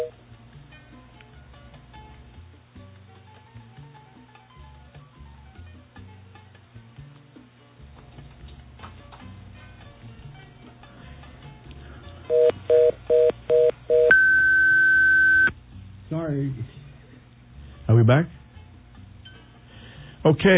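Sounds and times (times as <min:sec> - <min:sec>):
electronic telephone dialing tones during phone line glitch: 0:12.3 - 0:15.5
speech: 0:18.1 - 0:18.3, 0:20.3 - 0:20.5.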